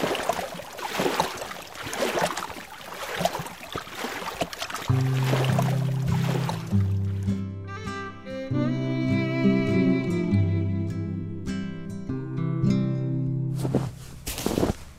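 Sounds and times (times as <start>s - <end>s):
oar paddling a small rowboat through water: 0.0s - 7.4s
soft tonal music: 4.9s - 14.9s.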